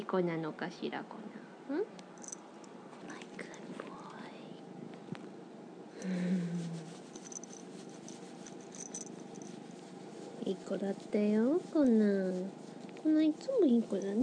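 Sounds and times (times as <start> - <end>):
speech: 0.0 - 2.0, 6.0 - 6.8, 10.5 - 14.2
cat purring: 6.1 - 14.2.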